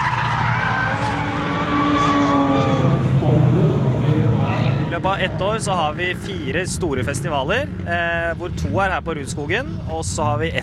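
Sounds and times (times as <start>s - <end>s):
tires screeching across the pavement: 0.0s - 8.8s
car engines roaring on a race track: 0.0s - 10.6s
speech: 5.0s - 10.6s.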